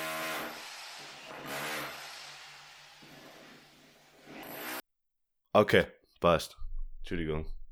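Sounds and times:
power drill boring holes into a wall: 0.0 - 4.8
speech: 5.6 - 7.6.

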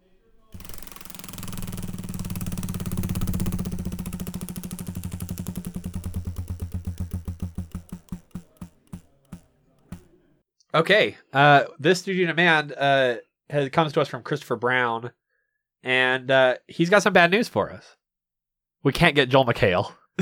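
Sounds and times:
prize wheel spinning with ratcheting clicks: 0.5 - 10.1
speech: 10.8 - 15.2, 15.8 - 18.0, 18.8 - 20.1.

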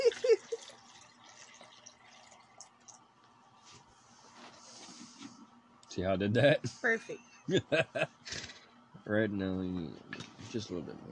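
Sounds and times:
laughter: 0.0 - 0.4, 7.5 - 8.5
water pouring into a container: 0.0 - 3.0
speech: 6.0 - 8.4, 9.1 - 11.1.

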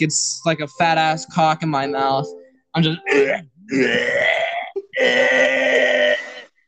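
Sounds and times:
speech: 0.0 - 4.4
gulping catch: 3.0 - 6.5
person imitating gagging and retching: 3.0 - 6.6.

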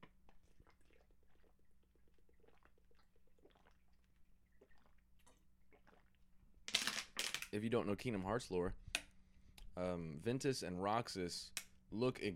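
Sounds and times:
person sipping and swallowing water: 0.0 - 6.2
speech: 7.6 - 8.8, 9.8 - 12.3.

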